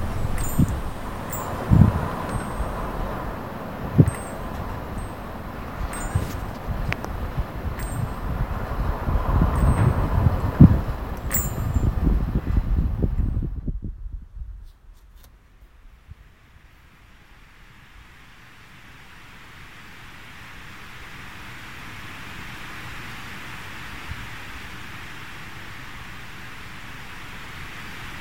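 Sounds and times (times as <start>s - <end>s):
faint high chirps: 0.0s - 12.0s
activity: 0.0s - 12.7s
wind gusting through tree leaves: 0.0s - 28.1s.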